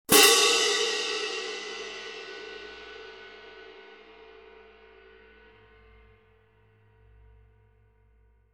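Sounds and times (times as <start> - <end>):
pair of medium heavy vintage orchestral cymbals: 0.1 - 5.2.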